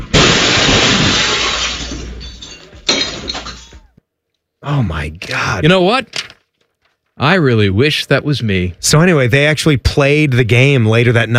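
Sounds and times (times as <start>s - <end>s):
car crashing into street-level studio: 0.0s - 3.9s
glass shattering: 0.0s - 3.9s
tinkling debris: 1.0s - 3.9s
speech: 4.7s - 6.2s, 7.2s - 11.3s.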